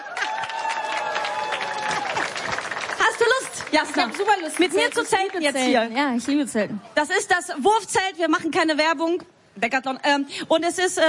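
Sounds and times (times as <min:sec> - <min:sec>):
cheers: 0:00.0 - 0:03.7
crowd clapping: 0:00.0 - 0:06.4
speech: 0:03.7 - 0:11.0.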